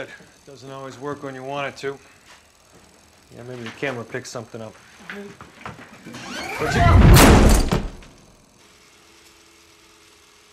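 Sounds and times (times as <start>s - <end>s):
speech: 0.0s - 2.2s, 3.3s - 7.5s
door slamming shut: 6.1s - 8.1s.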